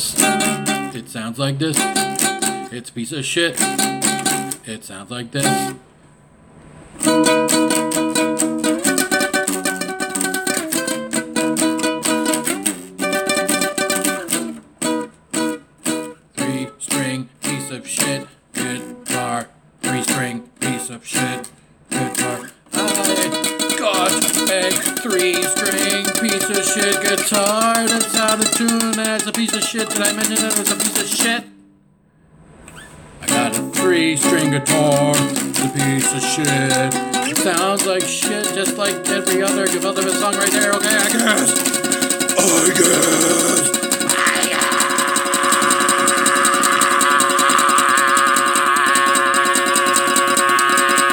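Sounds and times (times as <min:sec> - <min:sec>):
three-string guitar playing: 0:00.1 - 0:02.7, 0:03.5 - 0:04.7, 0:05.4 - 0:05.8, 0:07.0 - 0:31.7, 0:32.7 - 0:51.1.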